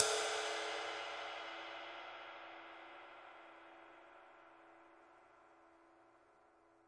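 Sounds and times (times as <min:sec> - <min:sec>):
big ride cymbal single hit: 0:00.0 - 0:02.0.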